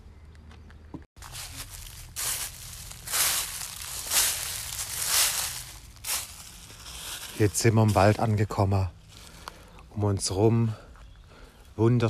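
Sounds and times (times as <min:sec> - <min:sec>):
footsteps crunching over rough ground toward a forest: 0:00.2 - 0:12.0
rustling: 0:01.2 - 0:08.3
speech: 0:07.4 - 0:09.0, 0:10.0 - 0:10.8, 0:11.8 - 0:12.0.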